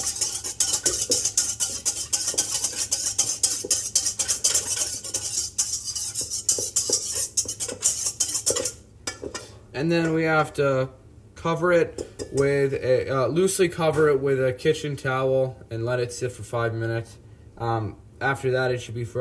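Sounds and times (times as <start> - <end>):
whisk clattering against a bowl stirring flatbread pizza dough ingredients: 0.0 - 10.2
speech: 9.8 - 19.2.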